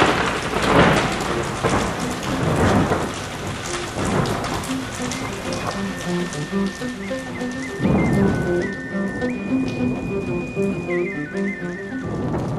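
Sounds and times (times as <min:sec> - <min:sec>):
steady rain in a storm in Tenochtitlan: 0:00.0 - 0:12.5
thunder rolling in broad bursts: 0:00.0 - 0:12.5
faint melodic tone line: 0:03.6 - 0:12.4.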